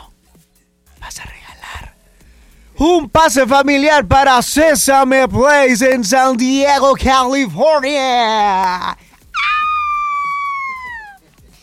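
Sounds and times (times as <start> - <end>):
speech: 1.1 - 1.4, 2.8 - 9.1
audience screaming in a high-pitched shriek: 9.4 - 11.2.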